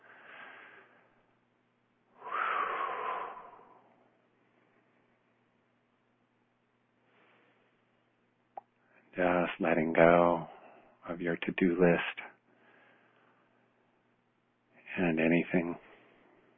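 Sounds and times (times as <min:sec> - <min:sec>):
slow deep breaths during a guided relaxation: 0:00.0 - 0:01.4, 0:02.1 - 0:05.1, 0:07.0 - 0:08.2, 0:10.4 - 0:11.0, 0:12.4 - 0:14.0
speech: 0:09.2 - 0:10.5, 0:11.1 - 0:12.3, 0:15.0 - 0:15.8.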